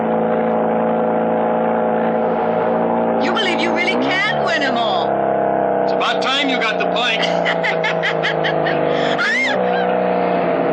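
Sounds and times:
car engine driving fast: 0.0 - 10.7
speech: 4.1 - 5.0, 6.0 - 10.1
laughter: 5.9 - 10.0.

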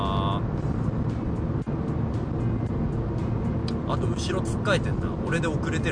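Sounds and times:
car climbing a long highway tunnel with the accelerator pressed: 0.0 - 5.9
speech: 3.9 - 5.9.

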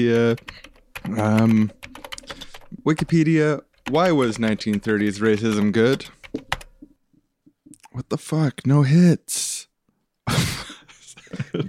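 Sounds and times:
speech: 0.0 - 1.8, 2.8 - 6.5, 8.0 - 9.7, 10.3 - 11.6
typing on a computer keyboard: 0.0 - 6.9.

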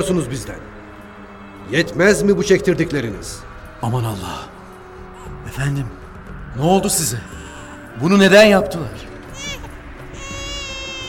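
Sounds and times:
speech: 0.0 - 0.8, 1.7 - 4.6, 5.5 - 6.0, 6.6 - 7.4, 8.0 - 9.1
baby crying: 9.0 - 11.0.

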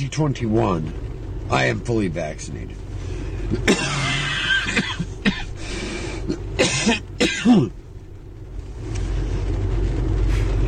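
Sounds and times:
speech: 0.0 - 2.8, 3.5 - 4.9, 6.3 - 7.8
low rumble: 0.0 - 10.6
man sick with COVID coughing heavily: 3.5 - 7.8.

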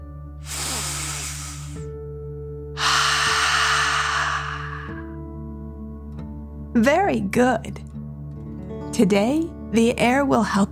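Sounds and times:
forceful exhale through mouth: 0.4 - 1.8, 2.8 - 5.2
deep inhale through nose: 0.4 - 1.9, 2.8 - 5.2
speech: 6.8 - 7.9, 9.0 - 10.7.

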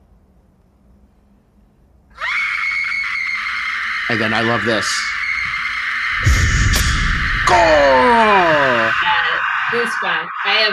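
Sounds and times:
blood-curdling scream: 2.1 - 10.7
speech: 4.1 - 5.2, 7.5 - 8.9, 9.7 - 10.7.

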